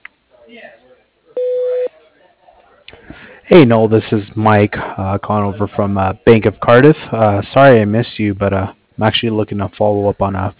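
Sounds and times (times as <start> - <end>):
speech: 0.5 - 0.8, 3.5 - 10.5
single loud steady voicemail beep: 1.4 - 1.9.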